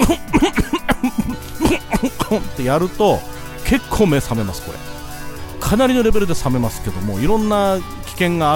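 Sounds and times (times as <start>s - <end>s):
person choking coughs after drinking something cold: 0.0s - 2.6s
speech: 0.1s - 0.6s, 2.3s - 4.8s, 5.7s - 8.5s.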